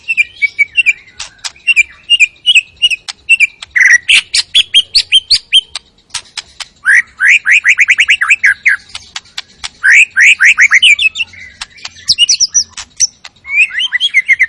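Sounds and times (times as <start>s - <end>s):
White-rumped shama singing rapid bursts of loud rising notes: 0.0s - 14.4s
White-rumped shama clicks: 1.2s - 1.9s, 2.8s - 6.8s, 8.7s - 13.5s.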